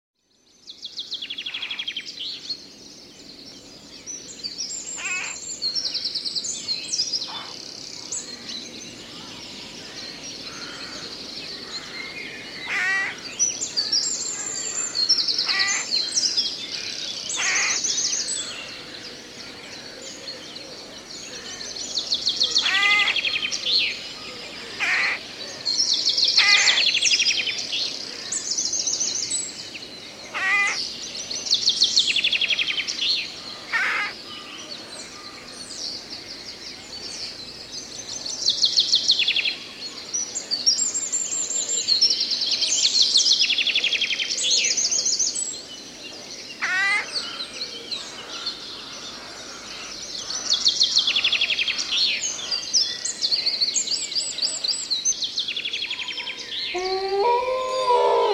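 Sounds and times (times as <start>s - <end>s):
forest sounds: 0.2s - 58.3s.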